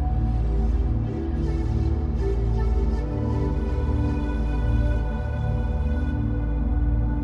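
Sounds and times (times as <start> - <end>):
ethnic flute playing: 0.1 - 7.1.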